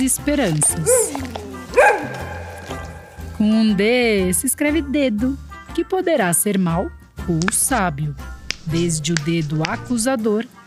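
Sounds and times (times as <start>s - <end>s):
speech: 0.0s - 1.9s, 3.4s - 10.6s
dog barking: 0.8s - 3.5s.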